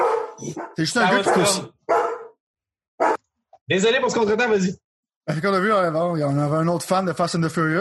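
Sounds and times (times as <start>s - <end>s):
dog barking: 0.0s - 2.4s, 3.0s - 3.3s
speech: 0.4s - 1.8s, 3.7s - 7.7s.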